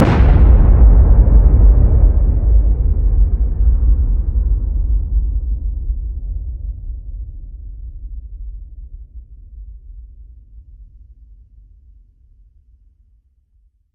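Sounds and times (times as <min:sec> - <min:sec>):
massive explosion: 0:00.0 - 0:06.5.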